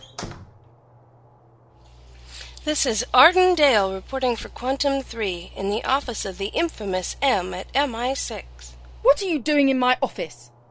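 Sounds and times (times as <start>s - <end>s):
office door handle and hinge noise: 0.0s - 0.7s
steady low hum in the room: 0.3s - 10.6s
speech: 2.6s - 10.5s.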